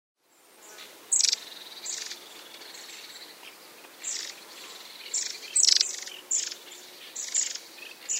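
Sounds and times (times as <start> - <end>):
long-tailed tit high thin buzzy calls: 1.1 - 8.1.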